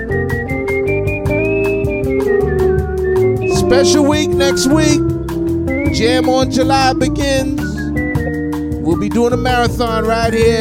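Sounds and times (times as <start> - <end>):
whistled melody in a jazzy tune: 0.0 - 9.7
rhythmic strummed guitar accompaniment in a jazzy tune: 3.3 - 7.5
speech: 3.7 - 5.1, 6.0 - 7.7, 8.9 - 10.5.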